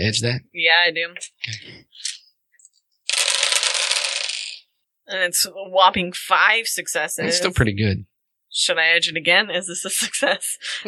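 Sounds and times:
speech: 0.0 - 2.1, 5.1 - 10.8
handful of dice tumbling together: 3.1 - 4.6.

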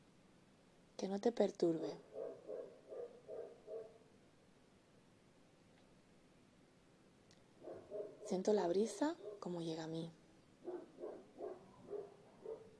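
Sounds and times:
soft hiss: 0.0 - 12.7
speech: 1.0 - 2.1, 8.3 - 10.2
dog barking: 2.0 - 4.0, 7.6 - 8.4, 9.2 - 9.5, 10.6 - 12.7.

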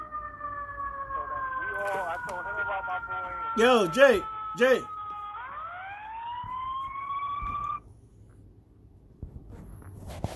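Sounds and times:
emergency vehicle siren wailing: 0.0 - 7.8
rumbling street noise: 0.0 - 10.3
speech: 2.2 - 4.9.

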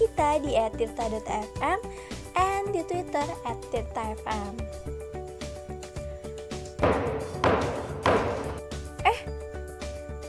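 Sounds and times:
speech: 0.0 - 5.0
gavel knocks: 6.8 - 8.6.

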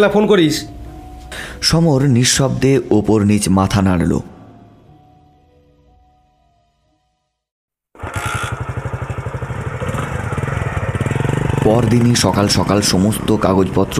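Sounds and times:
speech: 0.0 - 4.3, 11.7 - 13.9
motorcycle engine chugging: 8.0 - 13.9.

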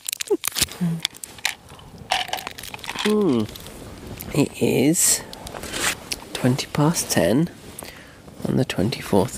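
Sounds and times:
crunching into a Dime chocolate bar: 0.0 - 4.3
speech: 0.3 - 1.1, 3.1 - 3.6, 4.3 - 5.3, 6.4 - 7.6, 8.5 - 9.3.

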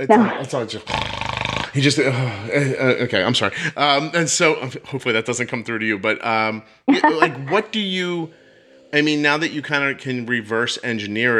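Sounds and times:
speech: 0.0 - 11.3
dog snoring: 0.8 - 1.8
laughter: 1.8 - 8.3.

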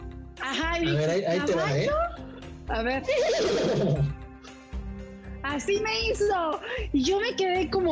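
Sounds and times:
speech: 0.4 - 4.2, 5.4 - 7.9
lower breathy humming tones: 2.1 - 4.7
person imitating a horse's whinny: 3.0 - 4.2.

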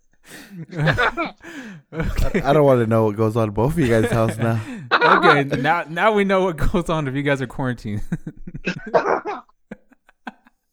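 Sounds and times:
man coughing: 0.3 - 2.7, 3.8 - 6.0
laughter: 0.3 - 10.7
speech: 0.5 - 9.5.

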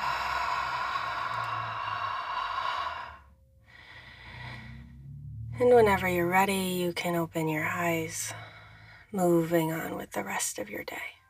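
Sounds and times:
deep breath in through the nose during guided meditation: 0.0 - 5.2, 8.4 - 9.1
soft slow exhale during guided meditation: 0.0 - 5.2
speech: 5.6 - 8.4, 9.1 - 11.2.

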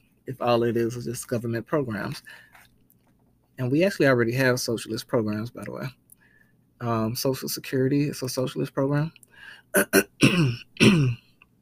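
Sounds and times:
speech: 0.3 - 2.5, 3.6 - 6.0, 6.8 - 11.2
person clearing throat: 9.8 - 11.3.

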